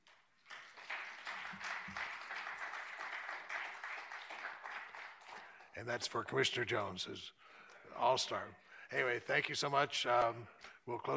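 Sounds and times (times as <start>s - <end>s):
audience applause: 0.4s - 5.7s
speech: 5.8s - 7.4s, 8.0s - 11.1s.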